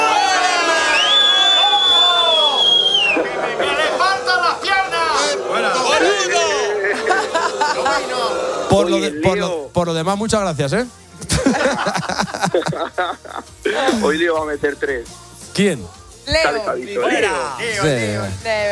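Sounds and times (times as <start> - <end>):
crowd booing: 0.0 - 9.3
shrill whistle: 0.8 - 3.5
laughter: 2.3 - 8.8, 11.2 - 14.2
speech: 8.7 - 18.7.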